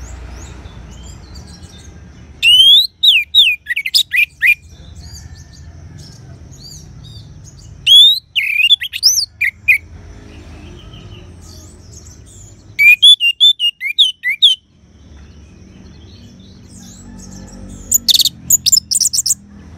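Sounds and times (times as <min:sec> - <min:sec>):
orange-headed thrush song: 0:02.4 - 0:04.6, 0:07.8 - 0:09.8, 0:12.8 - 0:14.7.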